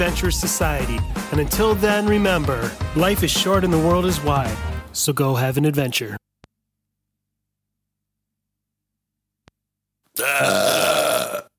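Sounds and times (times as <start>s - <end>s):
speech: 0.0s - 6.2s
loud belch: 10.2s - 11.5s.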